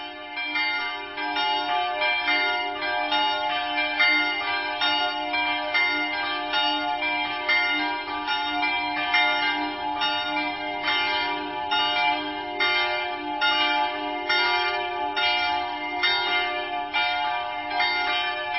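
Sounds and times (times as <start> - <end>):
several church bells pealing together: 0.0 - 18.5.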